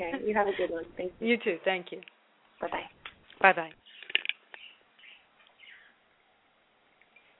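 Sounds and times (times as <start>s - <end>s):
speech: 0.0s - 3.8s
pet bird chirping: 3.8s - 6.0s.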